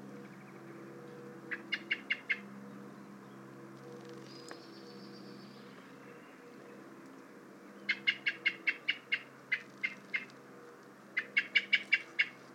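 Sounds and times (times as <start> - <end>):
common blackbird Turdus merula sharp clicking calls: 1.5 - 2.4, 7.9 - 12.4.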